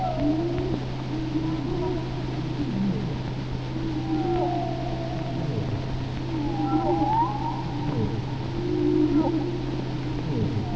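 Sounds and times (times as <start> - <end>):
persistent low engine-like hum: 0.0 - 10.7
whale vocalizations with tonal whistles and moans: 0.0 - 10.7.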